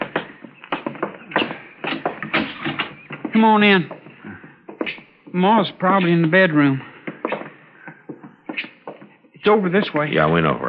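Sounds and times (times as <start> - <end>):
wooden door being opened: 0.0 - 4.9
speech: 3.4 - 4.0, 4.9 - 6.9, 9.5 - 10.6.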